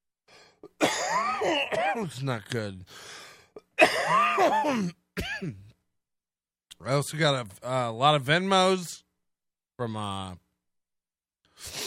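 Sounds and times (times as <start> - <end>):
person coughing: 0.6 - 2.1, 3.6 - 5.8
speech: 1.4 - 3.2, 3.8 - 5.7, 6.8 - 9.0, 9.8 - 10.4, 11.6 - 11.8.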